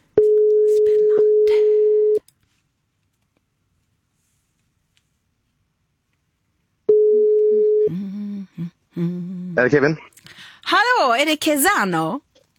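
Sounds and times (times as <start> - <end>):
phone ringback tone while calling a finalist in a talent competition: 0.2 - 2.2, 6.9 - 7.9
speech: 9.0 - 10.4, 11.1 - 12.3.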